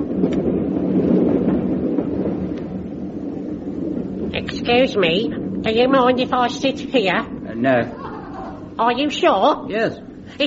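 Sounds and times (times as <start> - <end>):
faint clicks and rattles: 0.0 - 7.5
train rumbling on rails: 0.0 - 10.4
speech: 4.6 - 8.0, 8.8 - 10.4.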